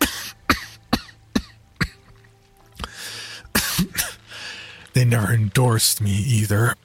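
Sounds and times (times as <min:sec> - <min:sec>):
harsh wet coughing: 0:00.0 - 0:02.1, 0:03.5 - 0:04.2
breathy rasps: 0:02.8 - 0:04.9
speech: 0:05.0 - 0:06.8.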